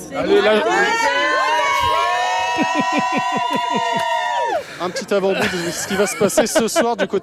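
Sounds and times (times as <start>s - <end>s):
big crowd of fans cheering and shouting for a female performer: 0.0s - 5.0s
speech: 0.1s - 1.4s, 2.6s - 7.2s
laughter: 1.7s - 7.2s.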